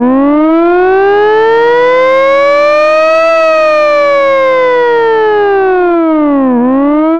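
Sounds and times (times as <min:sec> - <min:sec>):
vintage mechanical siren: 0:00.0 - 0:07.1.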